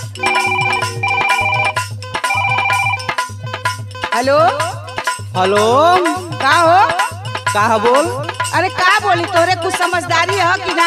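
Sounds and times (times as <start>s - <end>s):
phone bright electronic ringtone melody on an outgoing call: 0.0s - 3.1s
speech: 4.2s - 4.7s, 5.3s - 10.8s.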